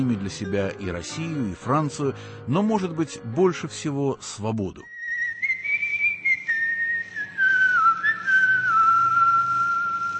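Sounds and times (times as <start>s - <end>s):
speech: 0.0s - 5.0s
whistled melody used as radio call sign: 4.8s - 10.1s.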